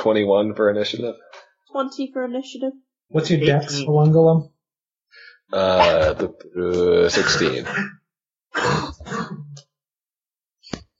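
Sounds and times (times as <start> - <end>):
speech: 0.0 - 9.4
rough throaty cough at a tabletop role-playing game session: 7.0 - 9.6.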